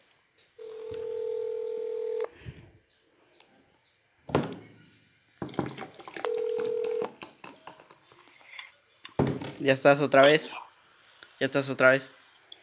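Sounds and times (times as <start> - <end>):
telephone dialing tones to return a call: 0.6 - 2.4, 6.2 - 7.2
speech: 9.6 - 10.6, 11.4 - 12.2.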